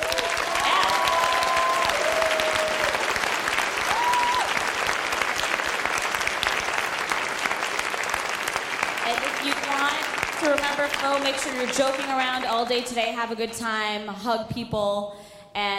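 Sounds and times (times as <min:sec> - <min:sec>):
whistles and cheers: 0:00.0 - 0:03.1, 0:03.8 - 0:04.7
large audience applauding: 0:00.0 - 0:12.6
speech: 0:11.0 - 0:15.7.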